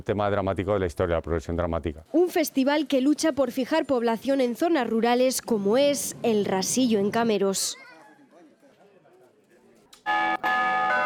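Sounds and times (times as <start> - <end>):
speech: 0.0 - 7.9
church bell ringing: 10.1 - 11.0.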